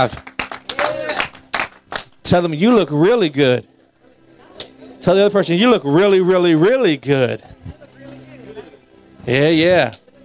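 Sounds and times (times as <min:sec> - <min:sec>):
speech: 0:00.0 - 0:00.3, 0:02.3 - 0:03.7, 0:05.0 - 0:07.8, 0:09.2 - 0:10.0
audience clapping hands in praise: 0:00.0 - 0:02.1.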